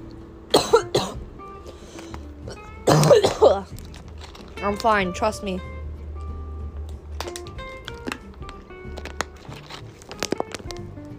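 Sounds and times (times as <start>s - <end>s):
harsh coughing: 0.5s - 1.2s, 2.5s - 3.7s
throaty throat clearing: 2.9s - 3.7s
speech: 4.6s - 5.7s.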